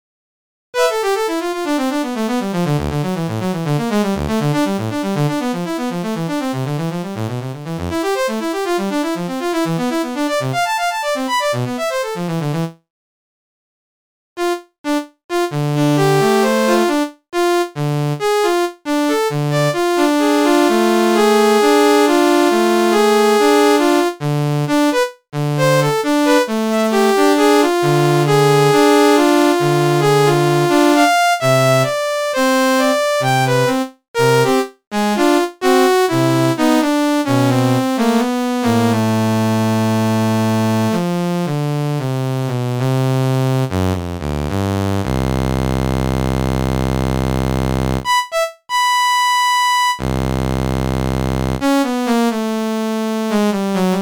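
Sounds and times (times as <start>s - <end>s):
electronic keyboard: 0.8s - 12.7s, 14.4s - 54.0s
saxophone: 25.6s - 36.5s, 48.0s - 50.1s.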